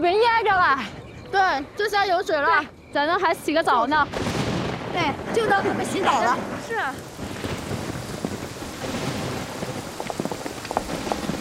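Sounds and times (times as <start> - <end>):
speech: 0.0 - 7.2
steady rain pouring: 4.1 - 11.4
drops pattering on a nearby surface: 7.0 - 11.4.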